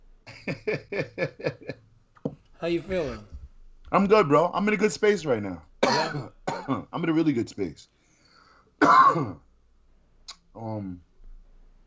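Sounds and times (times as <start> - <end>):
speech: 0.5 - 1.8, 2.6 - 3.3, 3.9 - 8.0, 8.8 - 9.4, 10.6 - 11.1
single harsh cough: 5.8 - 6.9, 8.8 - 9.5.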